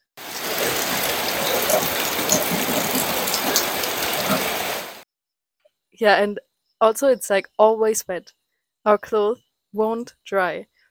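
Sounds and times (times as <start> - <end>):
heavy monsoon rain: 0.2 - 5.0
speech: 6.0 - 10.7.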